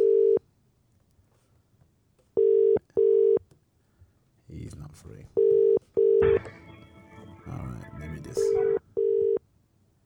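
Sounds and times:
unanswered phone call ringback tone with double-pulse electronic beeps: 2.4 - 3.4, 5.4 - 9.4
speech: 4.9 - 5.7.

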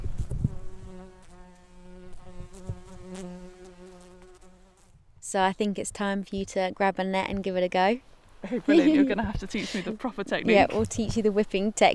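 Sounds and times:
caught and marked bees buzzing as they are released: 0.0 - 4.9
speech: 5.3 - 11.9
laughter: 8.4 - 10.9.

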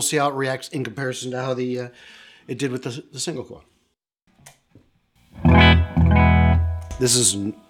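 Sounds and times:
speech: 0.0 - 3.7, 7.0 - 7.6
Les Paul electric guitar chords through an overdrive pedal: 5.4 - 7.4.

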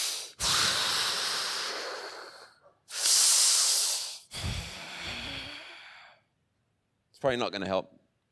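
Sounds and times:
loud deep breathing imitated by a human voice: 0.0 - 6.3
speech: 7.2 - 8.0.

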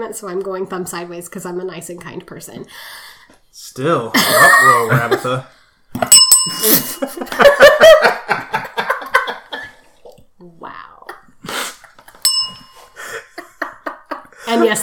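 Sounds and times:
speech: 0.0 - 8.6, 14.5 - 14.8
people laughing loudly: 4.2 - 5.4, 6.8 - 9.8, 13.0 - 14.8
bright bell ringing: 6.1 - 7.6, 12.2 - 13.0.

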